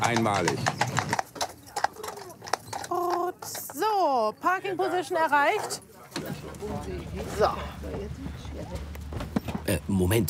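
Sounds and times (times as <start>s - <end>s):
speech: 0.0s - 1.1s, 3.8s - 8.8s, 9.7s - 10.2s
horse hooves clopping on pavement on a nearly car-free island: 0.0s - 4.6s, 7.8s - 9.8s
faint murmur: 0.6s - 10.2s.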